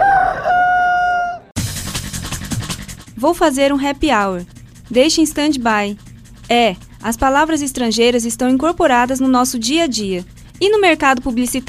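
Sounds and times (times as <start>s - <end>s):
rooster crowing: 0.0s - 1.6s
speech: 3.2s - 11.6s.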